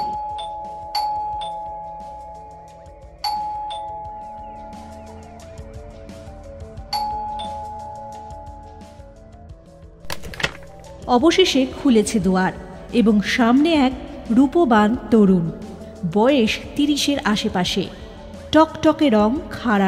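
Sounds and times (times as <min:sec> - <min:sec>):
flat doorbell ringing: 0:00.0 - 0:02.4, 0:03.2 - 0:04.5, 0:06.9 - 0:08.6
speech: 0:11.1 - 0:19.8.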